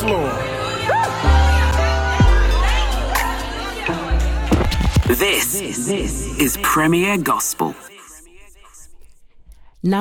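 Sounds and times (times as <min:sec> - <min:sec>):
congregation shouting and cheering in praise: 0:00.0 - 0:06.8
speech: 0:05.2 - 0:07.8.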